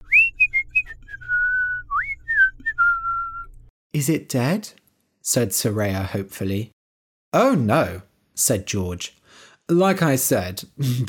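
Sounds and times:
person whistling a short clear tune: 0:00.0 - 0:03.7
speech: 0:03.9 - 0:06.7, 0:07.3 - 0:11.0.

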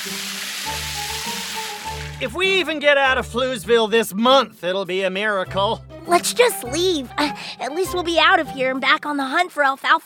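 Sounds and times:
water cannon spraying with a hiss of rushing water: 0:00.0 - 0:02.4
speech: 0:02.2 - 0:10.0.

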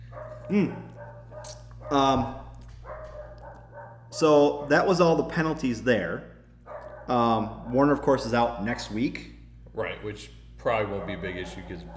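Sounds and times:
dog barking aggressively: 0:00.0 - 0:04.8, 0:06.6 - 0:07.8, 0:10.9 - 0:11.9
steady low hum: 0:00.0 - 0:11.9
speech: 0:00.2 - 0:02.4, 0:04.1 - 0:06.3, 0:07.1 - 0:11.9.

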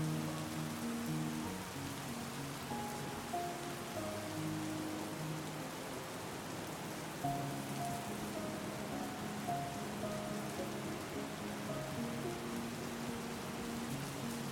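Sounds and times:
slow gentle melody of sustained low and mid notes: 0:00.0 - 0:14.5
soft rain hissing: 0:00.0 - 0:14.5.

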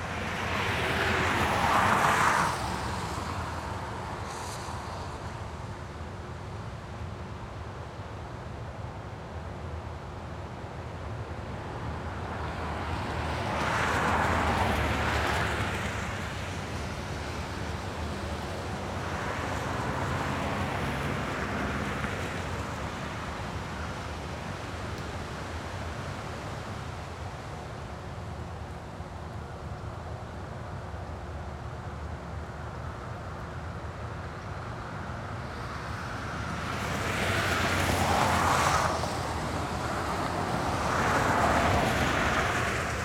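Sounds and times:
cars passing on a wet road with tire spray: 0:00.0 - 0:43.0
steady low rumble of traffic: 0:00.0 - 0:43.0.

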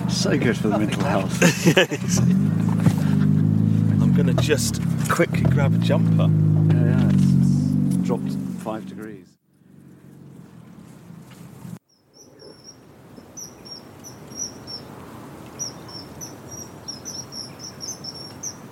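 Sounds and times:
speech: 0:00.2 - 0:02.7, 0:04.2 - 0:07.3, 0:08.1 - 0:09.4
laughter: 0:00.8 - 0:03.5
kingfisher giving thin high piping whistles by a river at dusk: 0:12.1 - 0:18.7.

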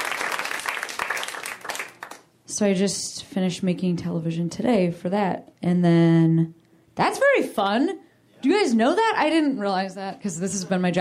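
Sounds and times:
audience applause: 0:00.0 - 0:02.2
speech: 0:02.6 - 0:10.9.

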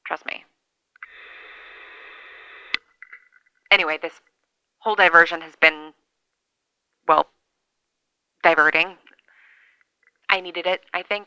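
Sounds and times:
radio static between channels hissing: 0:01.0 - 0:02.9
speech: 0:03.7 - 0:05.9, 0:07.1 - 0:07.3, 0:08.4 - 0:09.0, 0:10.4 - 0:11.2.

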